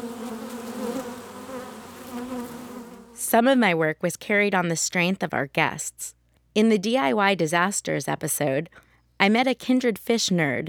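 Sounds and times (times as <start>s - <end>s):
many bees buzzing inside a beehive: 0.0s - 3.2s
speech: 3.2s - 10.6s.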